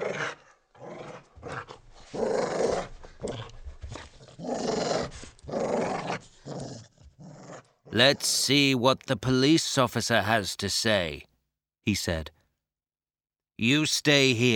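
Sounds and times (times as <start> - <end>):
dog growling: 0.0 - 8.4
speech: 8.0 - 11.3, 11.9 - 12.4, 13.6 - 14.5.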